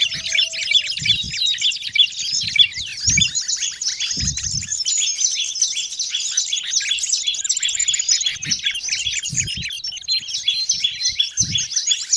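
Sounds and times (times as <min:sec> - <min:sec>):
birds chirping and twittering: 0:00.0 - 0:12.1.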